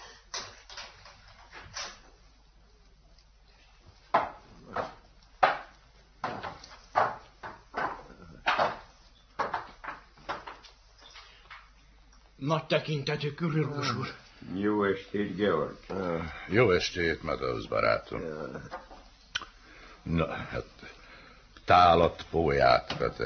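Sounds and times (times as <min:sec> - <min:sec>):
sharp wooden knocks and clunks: 0:04.1 - 0:10.6
speech: 0:12.4 - 0:18.8, 0:20.1 - 0:20.6, 0:21.7 - 0:23.2.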